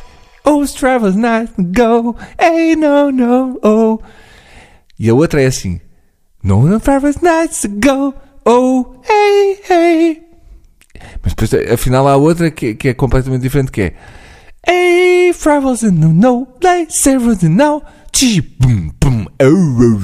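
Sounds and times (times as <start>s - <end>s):
man singing a generic pop-style melody in mock gibberish lyrics: 0.0s - 4.1s, 6.4s - 10.4s, 14.6s - 20.0s
speech: 0.6s - 4.3s, 5.0s - 10.2s, 11.0s - 20.0s.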